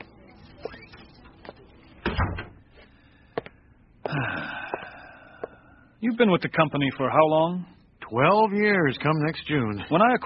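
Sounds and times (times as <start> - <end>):
door pushed shut with latch rattle: 2.0 - 2.6
speech: 6.0 - 10.2.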